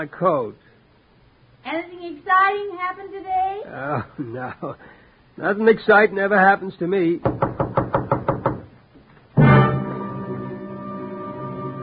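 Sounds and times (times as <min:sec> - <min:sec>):
speech: 0:00.0 - 0:00.6, 0:01.6 - 0:07.6
quick knocks on a door: 0:07.2 - 0:08.7
loud sustained chord: 0:09.4 - 0:11.8.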